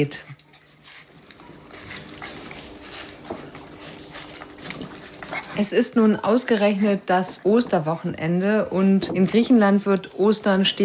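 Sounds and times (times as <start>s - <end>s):
speech: 0.0s - 0.3s, 5.6s - 10.8s
small dog snuffling and panting at a veterinary clinic in Greece: 0.3s - 5.8s.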